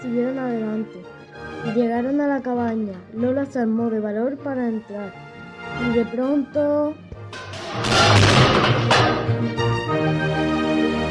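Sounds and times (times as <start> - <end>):
speech: 0.0 - 10.4
heavy object crashing to the floor inside a cabin: 7.4 - 9.4.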